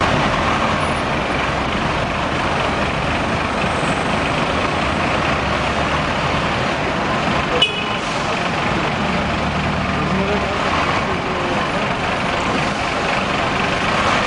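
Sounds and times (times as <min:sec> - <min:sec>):
bus: 0:00.0 - 0:14.2.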